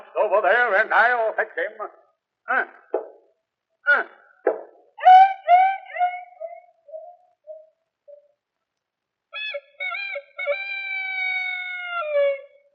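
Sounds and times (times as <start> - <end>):
speech: 0.2 - 2.9
human voice imitating a yelping and howling dog: 5.0 - 7.2, 9.4 - 12.7.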